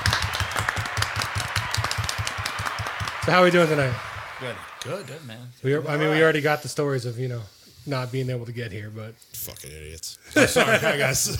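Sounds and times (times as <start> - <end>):
polite golf clapping: 0.0 - 4.9
speech: 3.3 - 11.3
laughter: 10.3 - 11.3.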